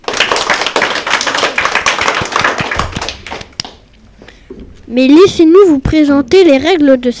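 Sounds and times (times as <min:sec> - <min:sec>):
crowd applauding for primary-school pupils being introduced: 0:00.0 - 0:03.8
speech: 0:04.9 - 0:07.1.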